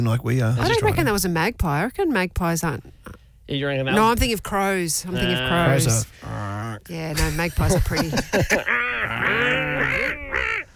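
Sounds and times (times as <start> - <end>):
speech: 0.0 - 10.5
laughter: 7.1 - 10.6
seagull squawking: 8.7 - 10.7.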